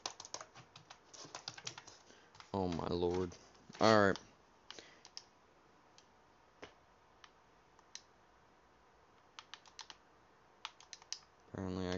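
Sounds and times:
keyboard keystrokes and clicks: 0:00.0 - 0:05.3, 0:09.4 - 0:10.0, 0:10.6 - 0:11.3
speech: 0:02.6 - 0:04.3.

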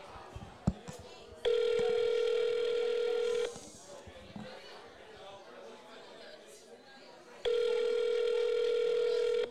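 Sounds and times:
electronic ringback tone of an outgoing call: 0:01.5 - 0:03.6, 0:07.5 - 0:09.4.

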